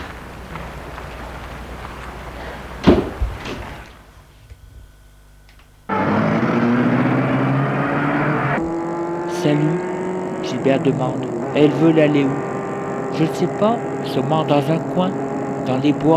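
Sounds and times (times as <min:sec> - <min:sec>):
car engine starting and humming: 0:00.0 - 0:04.2, 0:05.8 - 0:16.1
outdoor ambience in front of an apartment building: 0:00.0 - 0:16.1
speech: 0:09.4 - 0:09.8, 0:10.6 - 0:12.5, 0:13.2 - 0:16.1.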